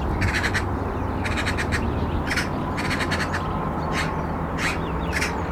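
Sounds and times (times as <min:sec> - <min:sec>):
Eurasian magpie Pica pica rattling chatter: 0:00.1 - 0:05.4.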